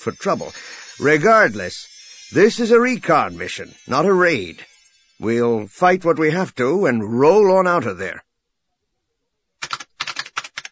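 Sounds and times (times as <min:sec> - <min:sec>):
speech: 0:00.0 - 0:08.2
keys being tapped on a datapad: 0:09.6 - 0:10.7.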